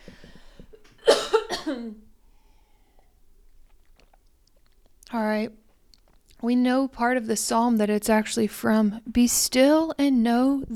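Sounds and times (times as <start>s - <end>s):
person clearing throat with a gravelly rasp: 1.0s - 2.1s
speech: 1.7s - 2.1s, 5.1s - 5.6s, 6.4s - 10.7s.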